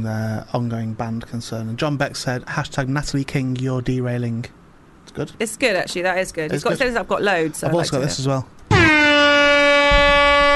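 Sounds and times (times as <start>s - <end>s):
speech: 0.0s - 4.6s, 5.2s - 9.2s
air horn blast: 8.7s - 10.5s.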